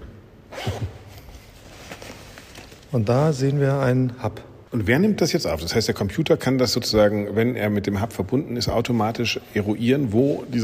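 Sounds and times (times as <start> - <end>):
small zipper on the back of a suit being pulled: 0.5 - 2.8
speech: 2.9 - 10.6.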